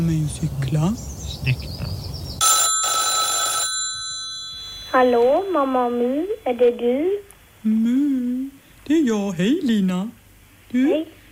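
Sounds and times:
speech: 0:00.0 - 0:02.0, 0:04.9 - 0:11.2
telephone ringing with electronic trills: 0:02.4 - 0:07.0.

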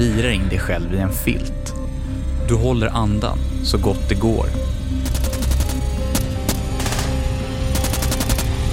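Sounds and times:
speech: 0:00.0 - 0:01.7, 0:02.5 - 0:05.1
rapid bursts of gunfire: 0:05.0 - 0:08.6.

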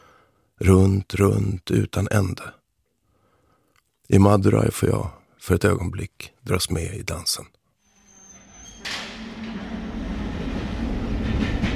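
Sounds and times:
speech: 0:00.6 - 0:02.6, 0:04.1 - 0:07.6
train rolling along the rails: 0:08.3 - 0:11.7.

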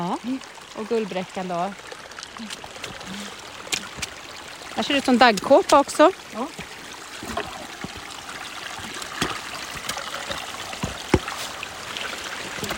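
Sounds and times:
speech: 0:00.0 - 0:03.4, 0:04.8 - 0:07.4
water trickling through a small spring stream in a wet meadow: 0:00.0 - 0:12.7.

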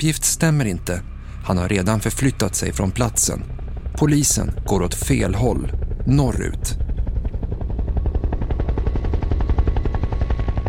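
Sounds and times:
speech: 0:00.0 - 0:06.9
helicopter carrying a news film crew flying over the island of Utøya: 0:01.7 - 0:10.6.

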